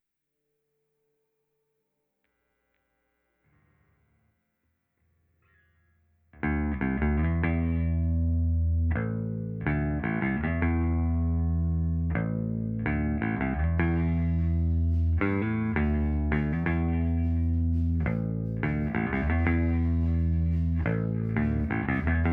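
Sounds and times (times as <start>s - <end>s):
mono synth bass: 6.5s - 22.3s.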